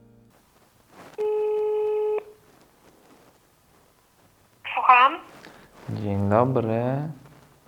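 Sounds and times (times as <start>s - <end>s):
telephone ringing tone heard through the line: 1.2s - 2.4s
speech: 6.0s - 7.2s.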